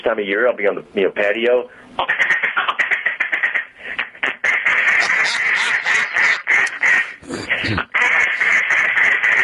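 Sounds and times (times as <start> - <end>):
speech: 0.0 - 2.4
duck call blown in quacking bursts: 2.0 - 9.4.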